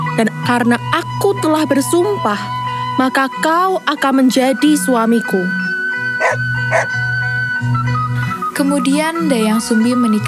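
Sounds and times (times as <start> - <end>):
speech: 0.2 - 7.0, 8.6 - 10.2
dog barking: 6.1 - 7.2.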